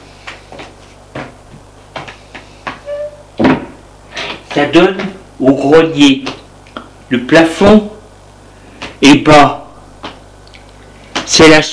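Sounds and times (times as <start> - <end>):
wooden door squeak: 2.8 - 3.4
wooden door thud: 3.4 - 3.8
speech: 4.6 - 6.3, 7.1 - 7.9, 9.0 - 9.6, 11.4 - 11.7.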